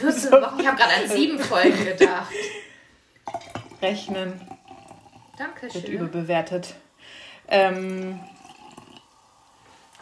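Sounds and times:
speech: 0.0s - 2.7s, 3.3s - 4.6s, 5.4s - 8.3s
laughter: 0.3s - 2.7s
sparkling drink being poured: 3.2s - 6.1s, 7.5s - 10.0s.

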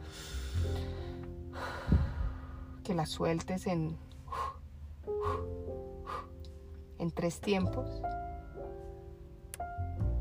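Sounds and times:
deep breath drawn in during a guided relaxation exercise: 0.0s - 2.8s
steady tonal background: 0.0s - 10.1s
speech: 2.9s - 4.4s, 7.1s - 8.2s.

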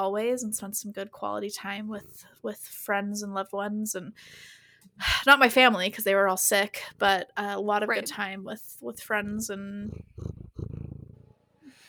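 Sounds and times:
speech: 0.0s - 10.4s
cat purring loudly: 9.0s - 11.3s
cat sniffing the microphone: 9.2s - 11.2s.

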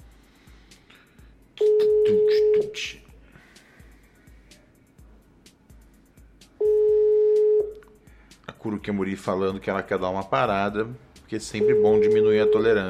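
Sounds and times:
ringback tones on a telephone line as a call is placed: 1.6s - 2.8s, 6.6s - 7.7s, 11.6s - 12.8s
speech: 2.4s - 3.0s, 8.6s - 12.8s.

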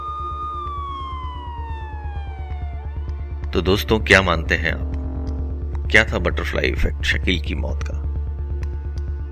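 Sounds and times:
police siren wailing: 0.0s - 6.0s
fast regular low thumping rumble: 0.1s - 9.2s
speech: 3.6s - 4.9s, 5.9s - 8.0s.

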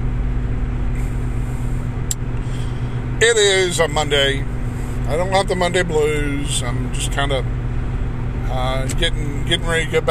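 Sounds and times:
road rumble of engine and tires inside a moving car: 0.0s - 10.0s
speech: 3.2s - 4.5s, 5.1s - 7.6s, 8.5s - 10.0s.

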